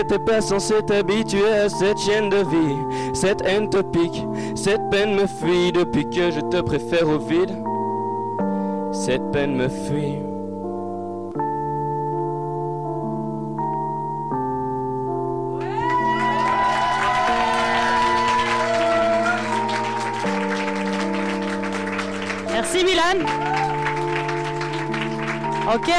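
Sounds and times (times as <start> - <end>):
speech: 0.0 - 7.7, 8.9 - 10.3, 25.7 - 25.9
sustained keyboard chords: 0.0 - 25.9
audience applause and cheering with whoops: 15.6 - 25.9.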